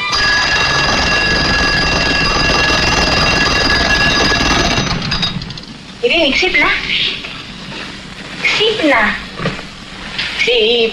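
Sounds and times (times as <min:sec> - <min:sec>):
mechanical alarm clock bell ringing: 0:00.0 - 0:05.6
speech: 0:06.1 - 0:07.2, 0:08.7 - 0:09.2, 0:10.4 - 0:10.9.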